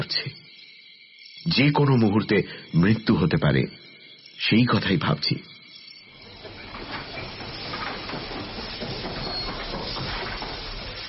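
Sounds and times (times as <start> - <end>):
speech: 1.4 - 3.8, 4.4 - 5.5
steam hissing from a train engine: 6.1 - 11.0
train engine clattering as it arrives outside a house: 6.1 - 11.0.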